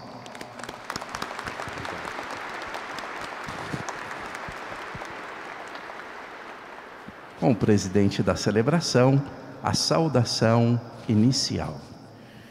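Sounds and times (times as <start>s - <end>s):
large audience applauding in a reverberant sanctuary: 0.0s - 8.3s
speech: 7.4s - 11.9s.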